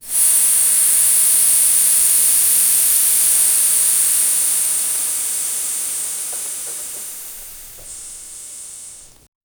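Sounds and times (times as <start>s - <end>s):
subtle steam hiss: 0.0s - 9.3s.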